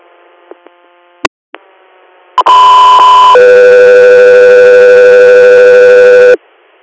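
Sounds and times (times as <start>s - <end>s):
two-tone radio dispatch alert tones: 2.4s - 6.4s.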